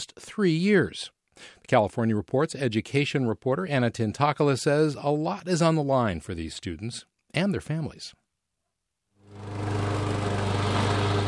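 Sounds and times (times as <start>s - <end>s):
speech: 0.0s - 8.2s
lawn mower engine mowing a front lawn: 9.2s - 11.2s.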